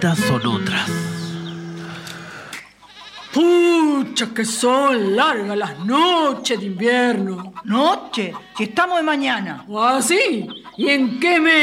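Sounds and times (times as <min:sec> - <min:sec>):
speech: 0:00.0 - 0:01.1, 0:03.4 - 0:11.6
sheep bleating in the distance: 0:02.8 - 0:09.6.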